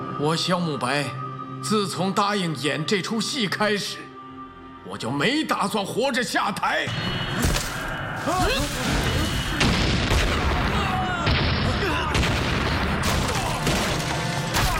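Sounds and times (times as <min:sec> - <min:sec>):
speech: 0:00.2 - 0:04.1, 0:04.9 - 0:07.5, 0:08.3 - 0:09.1
barrage of heavy explosions: 0:08.5 - 0:14.7.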